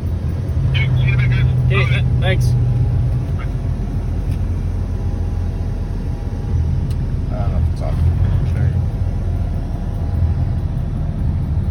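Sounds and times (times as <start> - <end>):
Canadian convoy of trucks rumbling past across an overpass: 0.0 - 11.6
speech: 1.8 - 2.7.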